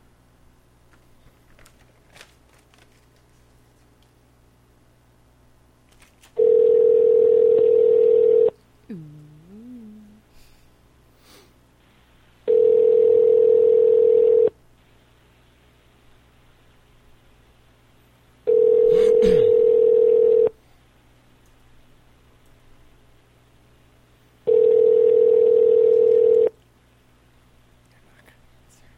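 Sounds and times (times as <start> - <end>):
telephone dialing: 6.4 - 8.5, 12.5 - 14.5, 19.6 - 20.5, 24.5 - 26.5
telephone dial tone: 6.4 - 8.6, 12.5 - 14.5, 18.5 - 20.5, 24.5 - 26.5
faint breathing: 8.9 - 11.6.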